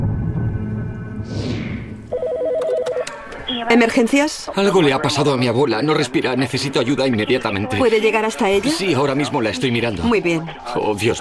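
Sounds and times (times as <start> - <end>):
brief airy whoosh: 1.1 - 2.1
telephone ringing for an emergency call with alternating warbling tones: 2.1 - 3.7
speech: 3.7 - 11.1.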